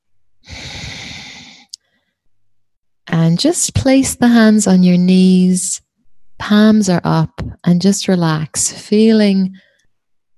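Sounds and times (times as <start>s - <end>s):
quiet breathing: 0.4s - 2.3s, 9.5s - 10.2s
forceful exhale after a held breath during a breathing exercise: 0.5s - 1.7s
sharp sniff: 0.5s - 1.8s
speech: 3.1s - 5.8s, 6.4s - 9.7s.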